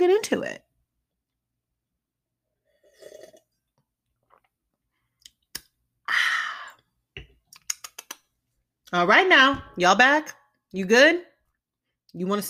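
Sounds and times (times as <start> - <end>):
speech: 0.0 - 0.6, 8.9 - 11.3, 12.2 - 12.4
sipping wine with a soft slurp: 2.7 - 3.6
small mouth clicks: 7.5 - 8.3.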